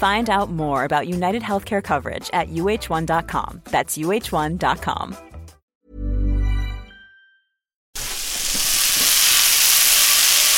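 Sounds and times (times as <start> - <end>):
speech: 0.0 - 5.3
butter melting and sizzling in a frying pan: 8.0 - 10.5.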